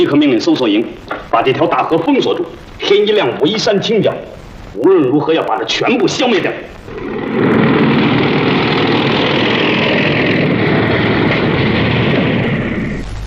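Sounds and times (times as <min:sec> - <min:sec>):
speech: 0:00.0 - 0:07.2
motorcycle engines droning: 0:06.9 - 0:13.0.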